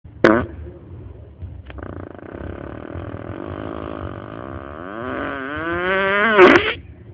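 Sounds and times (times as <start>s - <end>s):
fart: 0.2s - 0.6s, 1.7s - 6.8s.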